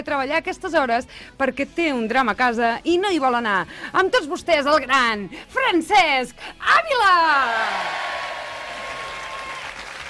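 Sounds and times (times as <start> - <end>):
speech: 0.0 - 8.2
dense applause: 7.6 - 10.0.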